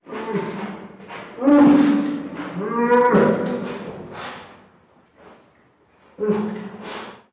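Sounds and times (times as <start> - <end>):
captive brown bear giving deep moaning roars at a zoo in Madrid: 0.0 - 4.4, 6.2 - 7.0.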